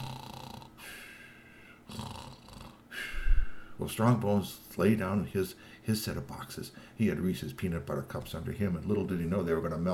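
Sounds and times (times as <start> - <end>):
person imitating snoring: 0.0 - 1.1, 1.8 - 3.1
speech: 3.8 - 9.9.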